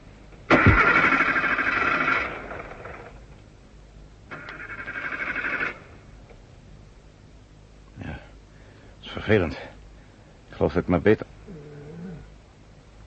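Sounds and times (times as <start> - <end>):
car engine cranking: 0.5 - 3.1, 4.3 - 5.8
speech: 9.3 - 9.8, 10.6 - 11.2.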